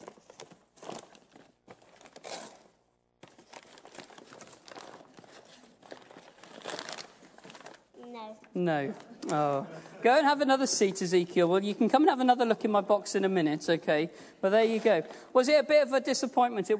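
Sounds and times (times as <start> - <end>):
wrapping paper crumpling while unwrapping a box: 0.0 - 8.0
speech: 8.3 - 16.7.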